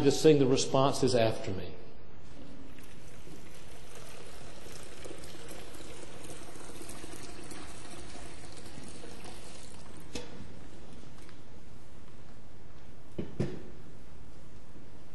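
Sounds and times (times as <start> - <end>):
speech: 0.0 - 1.8
water poured into a baptismal font during a church service: 2.4 - 10.7.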